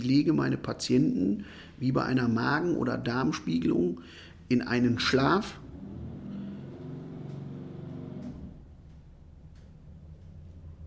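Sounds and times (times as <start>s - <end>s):
speech: 0.0s - 5.6s
heavy car with deep throaty engine driving past outside: 5.4s - 10.8s.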